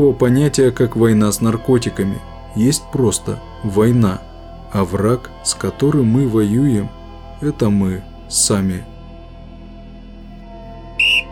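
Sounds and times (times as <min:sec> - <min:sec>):
speech: 0:00.0 - 0:08.9
referee's whistle blast at a football match: 0:11.0 - 0:11.3.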